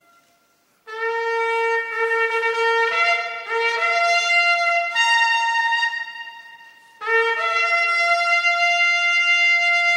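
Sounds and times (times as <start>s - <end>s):
shofar blowing: 0.0s - 9.9s.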